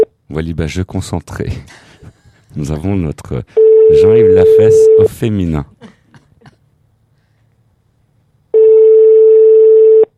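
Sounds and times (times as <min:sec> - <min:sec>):
speech: 0:00.3 - 0:06.0
reservation service telephone line electronic tone: 0:03.6 - 0:05.1, 0:08.6 - 0:10.1.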